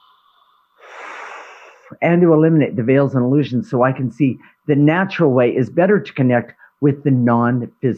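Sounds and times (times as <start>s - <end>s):
person taking a deep breath during a guided meditation: 0.0s - 1.9s
speech: 1.9s - 7.9s.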